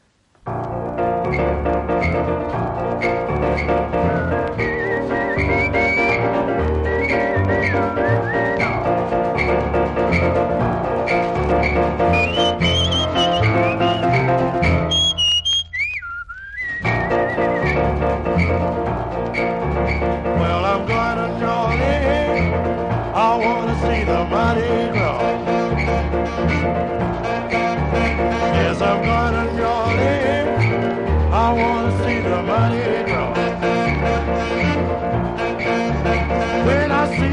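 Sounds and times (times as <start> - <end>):
bright whistled melody with high trill: 1.2 - 37.3
lively carnival song played by full band with piano and rhythm section: 2.8 - 15.4, 16.8 - 19.4, 20.0 - 37.3.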